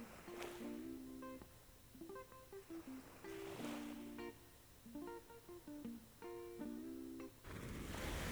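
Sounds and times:
gentle melodic tune: 0.0 - 7.4
soft waves lapping against the shore: 0.0 - 8.3.

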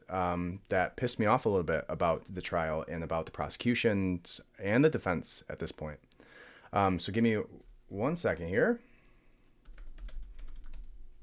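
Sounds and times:
speech: 0.1 - 8.9
typing on a computer keyboard: 9.6 - 11.0.

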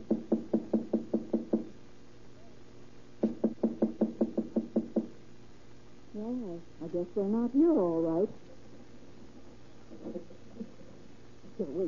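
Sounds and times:
firm knocking on an apartment door: 0.0 - 1.7, 3.2 - 5.2
speech: 6.3 - 8.5.

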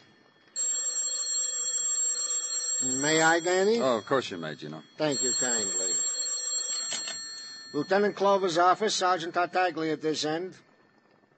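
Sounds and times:
telephone bell ringing: 0.5 - 8.7
speech: 3.0 - 5.9, 7.7 - 10.6.

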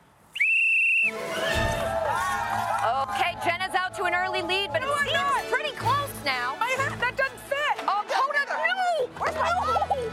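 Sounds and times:
noise: 0.0 - 10.1
whistle blast blown to start a race: 0.4 - 1.8.

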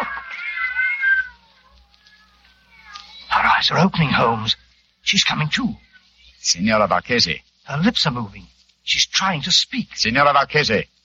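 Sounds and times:
several cats meowing and yowling: 0.0 - 3.6
speech: 3.6 - 5.8, 6.4 - 10.9.

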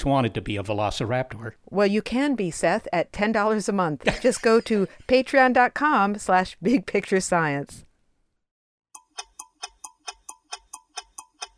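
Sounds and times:
speech: 0.0 - 7.9
mechanical clock ticking: 9.0 - 11.5.

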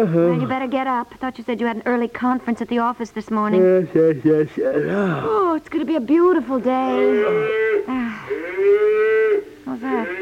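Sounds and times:
speech: 0.0 - 9.0, 9.7 - 10.2
cow mooing in a residential district: 6.8 - 10.2.

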